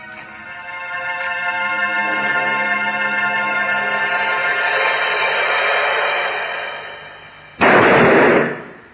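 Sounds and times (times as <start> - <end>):
sustained tonal drone: 0.0 - 7.6
gunshot from an 1842 pistol: 7.6 - 8.8.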